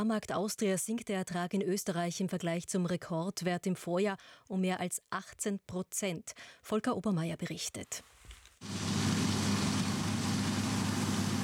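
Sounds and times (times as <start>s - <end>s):
speech: 0.0s - 9.0s
combine harvesters and tractors working in fields: 8.6s - 11.4s.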